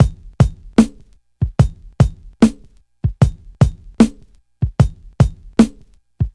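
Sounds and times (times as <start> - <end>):
breakbeat in C: 0.0 - 6.3.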